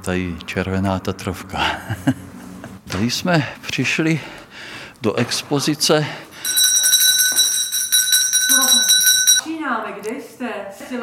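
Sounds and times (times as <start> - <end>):
speech: 0.0 - 2.3, 2.9 - 6.3, 10.4 - 11.0
electric school bell ringing: 6.4 - 9.5.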